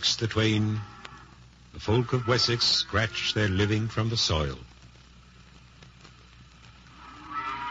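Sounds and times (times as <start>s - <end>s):
speech: 0.2s - 1.0s, 1.8s - 4.7s
cow mooing in a barn: 7.0s - 7.6s.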